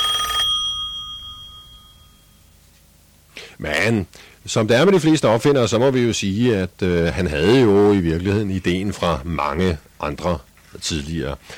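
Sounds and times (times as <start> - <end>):
old-fashioned American telephone bell ringing: 0.0 - 2.4
speech: 3.6 - 11.5.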